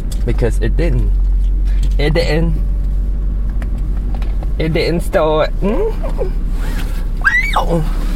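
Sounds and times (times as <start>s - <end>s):
low steady hum: 0.0s - 8.1s
speech: 0.2s - 2.8s, 4.6s - 6.9s, 7.6s - 8.0s
person letting out a high squeaky vocal squeal: 7.2s - 8.0s.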